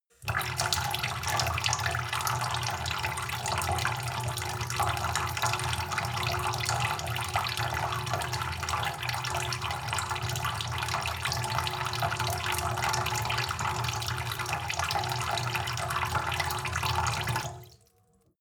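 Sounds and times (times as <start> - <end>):
sink filling with water in a commercial kitchen: 0.1 - 18.1.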